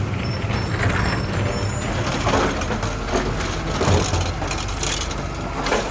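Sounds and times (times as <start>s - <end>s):
heavy garbage truck engine rumbling in front of a house: 0.0s - 5.8s
mechanical clanks of waste bin being emptied: 2.1s - 5.8s.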